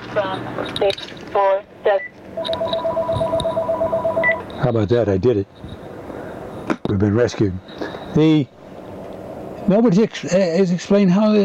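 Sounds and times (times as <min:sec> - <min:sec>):
speech: 0:00.2 - 0:03.1, 0:04.7 - 0:05.8, 0:06.9 - 0:08.6, 0:09.7 - 0:11.4
faint beeps: 0:02.0 - 0:04.6
telephone being picked up: 0:02.4 - 0:04.5
voice-like electronic chirps: 0:02.4 - 0:04.5.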